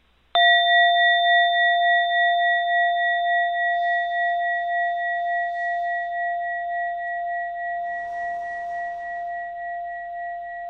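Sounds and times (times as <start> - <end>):
small bell ringing: 0.4 - 7.9.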